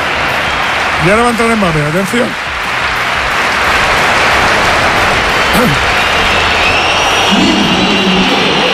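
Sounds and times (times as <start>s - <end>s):
dense roaring stadium crowd: 0.0s - 8.7s
stadium crowd of thousands whistling in disapproval: 0.1s - 1.0s, 5.2s - 8.7s
speech: 1.0s - 2.4s, 5.6s - 6.0s, 7.3s - 7.6s.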